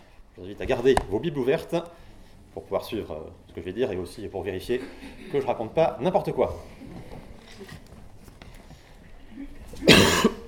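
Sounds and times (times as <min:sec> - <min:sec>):
speech: 0:00.4 - 0:07.8
harsh cough: 0:09.8 - 0:10.4
throat clearing: 0:09.8 - 0:10.4.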